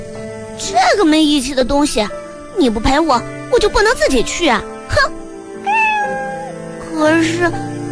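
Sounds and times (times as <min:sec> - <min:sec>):
speech: 0:01.0 - 0:05.2, 0:07.0 - 0:07.7
cat meowing: 0:05.5 - 0:06.7.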